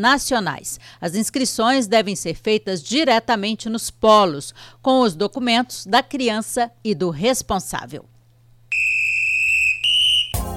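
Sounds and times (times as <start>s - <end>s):
speech: 0.0s - 8.1s
whistle blowing: 8.7s - 10.5s.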